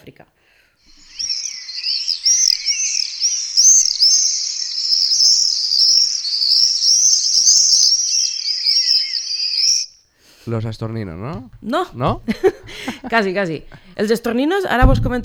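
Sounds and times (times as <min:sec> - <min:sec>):
speech: 0:00.0 - 0:01.0, 0:10.5 - 0:15.2
chorus of common swifts screaming: 0:00.8 - 0:10.1
laughter: 0:12.1 - 0:14.0.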